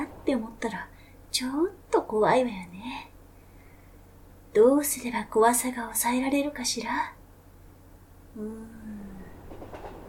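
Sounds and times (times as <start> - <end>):
electric train rumbling: 0.0 - 2.5, 8.4 - 10.0
speech: 0.3 - 3.1, 4.5 - 7.2, 8.4 - 8.8
clattering rail knocks: 9.4 - 10.0.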